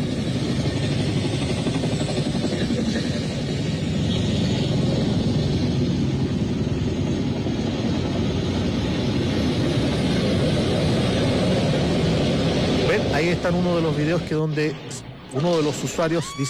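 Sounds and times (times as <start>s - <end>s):
helicopters flying overhead at night: 0.0s - 16.4s
speech: 13.4s - 16.4s.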